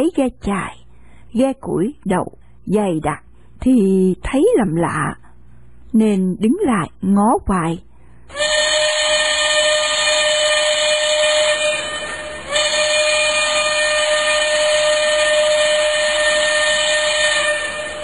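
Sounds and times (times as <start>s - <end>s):
speech: 0.0s - 5.2s, 5.9s - 8.5s
steam train whistle blowing: 8.3s - 18.0s.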